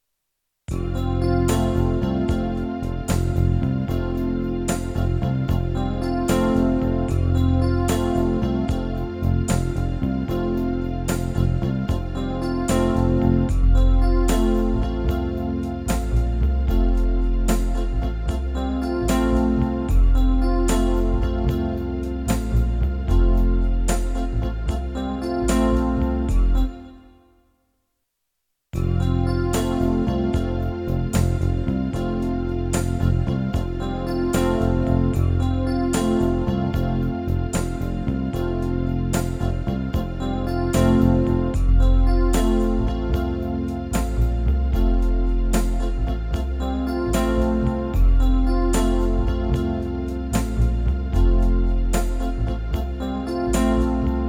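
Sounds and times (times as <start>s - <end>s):
world music bass: 0.6s - 27.4s, 28.7s - 54.2s.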